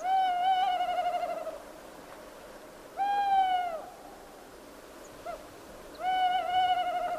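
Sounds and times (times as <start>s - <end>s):
tawny owl hooting at night: 0.0s - 1.6s, 3.0s - 4.0s, 5.2s - 7.1s
faint hiss: 0.0s - 7.1s.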